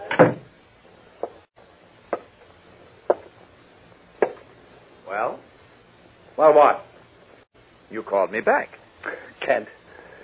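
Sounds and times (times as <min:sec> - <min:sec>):
door shutting with a solid thud: 0:00.0 - 0:00.5
speech: 0:06.4 - 0:06.8, 0:07.9 - 0:09.8.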